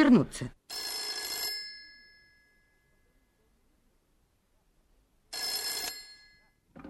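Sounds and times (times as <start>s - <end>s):
speech: 0.1s - 0.9s
old-style telephone bell ringing: 0.7s - 2.9s, 5.3s - 6.6s.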